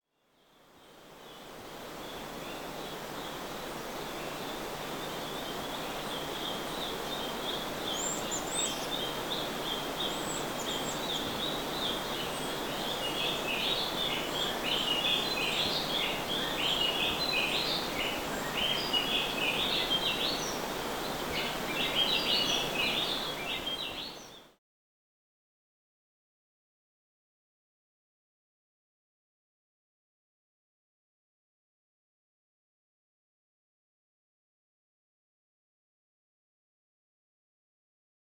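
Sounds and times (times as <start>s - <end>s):
birds in a rainforest: 0.5s - 24.6s
waterfall in a rainforest: 0.5s - 24.6s.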